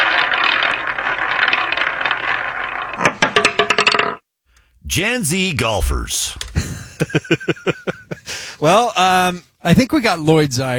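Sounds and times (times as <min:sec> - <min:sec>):
prize wheel spinning: 0:00.0 - 0:04.2
speech: 0:05.0 - 0:08.0, 0:08.6 - 0:10.7
laughter: 0:06.4 - 0:08.8.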